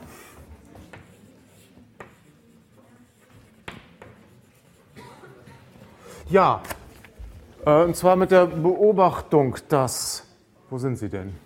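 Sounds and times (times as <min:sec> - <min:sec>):
writing on a board during a math lecture: 0:00.0 - 0:05.0
speech: 0:06.3 - 0:06.7, 0:07.6 - 0:11.4.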